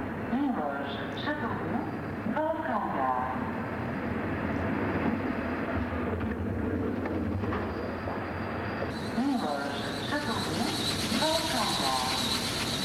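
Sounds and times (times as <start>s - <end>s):
train arriving at a station platform: 0.0s - 12.8s.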